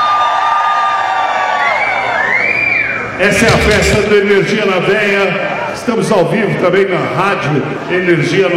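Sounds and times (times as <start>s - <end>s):
large live crowd of women screaming high-pitched: 0.0s - 3.1s
speech: 3.2s - 8.5s.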